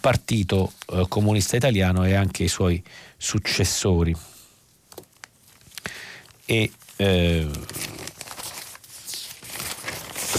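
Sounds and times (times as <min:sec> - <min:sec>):
paper rustling and crinkling: 0:00.0 - 0:02.4, 0:04.9 - 0:10.3
speech: 0:00.0 - 0:04.4, 0:06.5 - 0:08.0.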